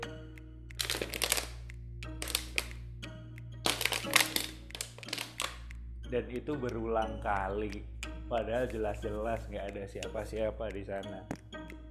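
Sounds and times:
plastic bottle squeezed and crinkled by hand: 0.8s - 1.6s, 2.2s - 2.8s, 3.6s - 5.6s
speech: 6.1s - 11.4s.

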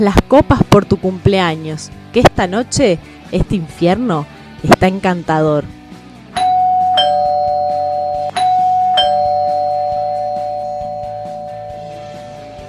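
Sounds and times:
speech: 0.0s - 5.8s
doorbell ringing: 6.4s - 12.6s.

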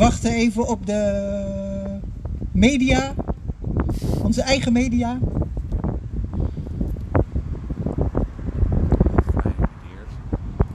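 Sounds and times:
speech: 0.0s - 1.6s, 2.6s - 3.3s, 4.0s - 5.4s
gusty outdoor wind on a sunny day buffeting the microphone: 0.0s - 10.7s.

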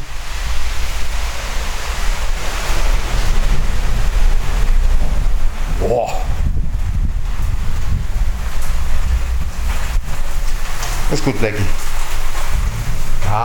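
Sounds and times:
strong gusty wind buffeting the microphone: 0.0s - 13.4s
person exclaiming: 5.8s - 6.4s
speech: 11.1s - 11.9s.

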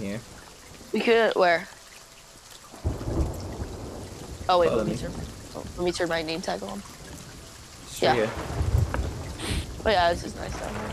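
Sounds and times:
speech: 0.0s - 1.8s, 4.5s - 6.9s, 8.0s - 8.6s, 9.8s - 10.9s
in-game steady rain hiss: 0.0s - 10.9s
in-game low rumbling roll of thunder: 2.8s - 10.9s.

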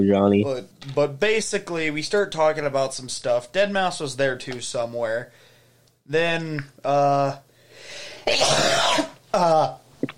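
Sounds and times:
speech: 0.0s - 5.4s, 6.1s - 10.1s
sneeze: 8.2s - 9.2s.

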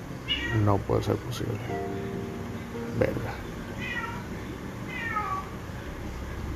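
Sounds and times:
low hum: 0.0s - 6.5s
cat meowing: 0.3s - 0.7s, 3.8s - 4.3s, 4.9s - 5.5s
speech: 0.6s - 2.2s, 3.0s - 3.5s.

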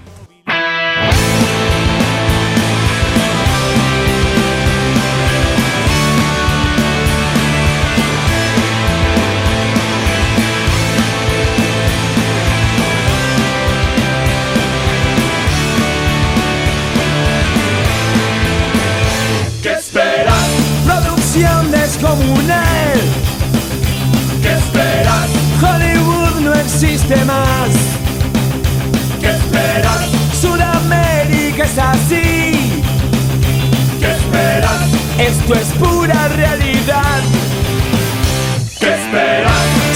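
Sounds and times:
Argentine rock song with distorted electric guitars, bass and drums: 0.0s - 39.9s.

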